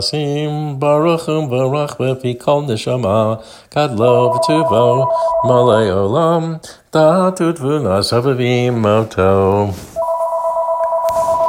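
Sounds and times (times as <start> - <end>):
speech: 0.0 - 9.9
telephone ringing with a two-pitch electronic tone: 4.0 - 6.0, 10.0 - 11.4.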